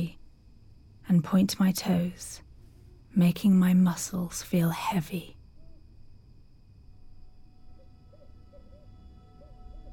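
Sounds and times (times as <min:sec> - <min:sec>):
faint high hum of night ambience: 0:00.0 - 0:09.9
speech: 0:01.1 - 0:02.4, 0:03.1 - 0:05.4
owl hooting: 0:07.6 - 0:09.9.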